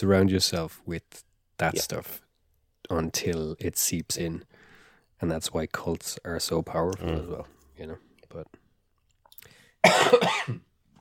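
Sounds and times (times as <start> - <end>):
speech: 0.0 - 2.2, 2.9 - 4.6, 5.2 - 8.6, 9.8 - 10.7
person with a cough lasting over a month coughing: 9.8 - 10.7.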